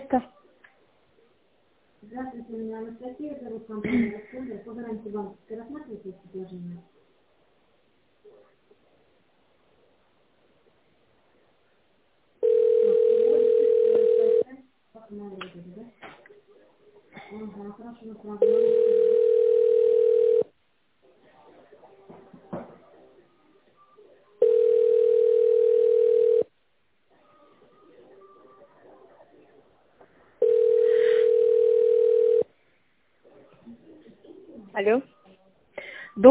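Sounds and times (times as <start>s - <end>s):
speech: 0.1s - 0.4s, 2.0s - 7.0s, 15.0s - 16.2s, 17.3s - 19.3s, 34.8s - 35.2s
telephone tone while call is transferred to specialist: 12.4s - 14.4s, 18.4s - 20.5s, 24.4s - 26.5s, 30.4s - 32.5s.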